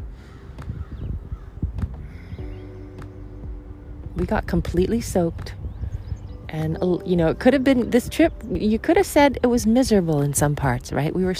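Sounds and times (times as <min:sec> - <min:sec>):
faint high chirps of small birds: 0:00.0 - 0:11.3
rumbling outdoor background: 0:00.0 - 0:11.3
crows cawing: 0:00.1 - 0:02.5
speech: 0:04.2 - 0:05.6, 0:06.5 - 0:11.3.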